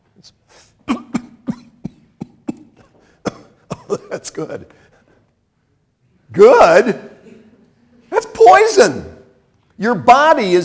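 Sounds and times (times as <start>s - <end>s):
speech: 0.2s - 1.0s, 3.9s - 4.9s, 6.4s - 7.1s, 8.4s - 9.1s, 9.8s - 10.6s
person coughing: 0.8s - 4.8s.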